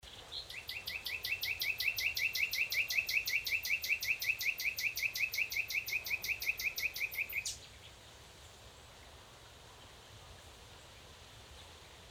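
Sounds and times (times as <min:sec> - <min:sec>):
Common nightingale Luscinia megarhynchos trilling: 0:00.1 - 0:07.7.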